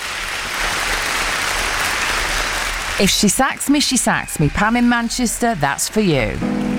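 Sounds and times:
applause: 0:00.0 - 0:04.8
speech: 0:03.0 - 0:06.6.

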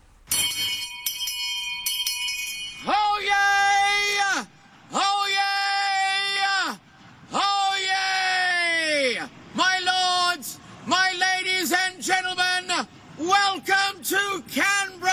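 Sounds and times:
brief ringing tone: 0:00.3 - 0:04.2
man shouting at 122 decibels in a record-breaking attempt: 0:02.9 - 0:15.1.

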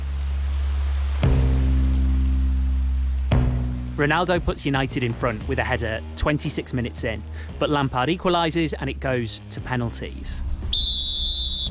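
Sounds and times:
heavy rain pouring down: 0:00.0 - 0:11.6
low droning hum: 0:00.0 - 0:11.6
sudden knock: 0:03.3 - 0:05.7
speech: 0:04.0 - 0:10.5.

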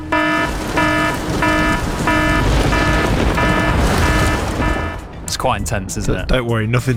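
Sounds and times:
loud buzzy electronic alarm: 0:00.0 - 0:05.1
falling rain: 0:00.0 - 0:06.4
speech: 0:05.4 - 0:06.9.

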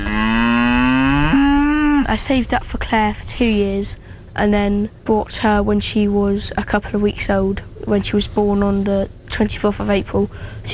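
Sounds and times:
cow born in April 2023 mooing: 0:00.0 - 0:02.1
speech: 0:02.1 - 0:10.7.

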